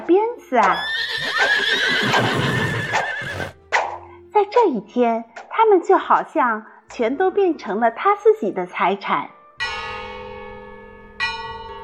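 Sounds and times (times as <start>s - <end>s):
speech: 0.0s - 2.6s, 4.4s - 9.4s
church steeple bells ringing for a service: 9.6s - 11.8s.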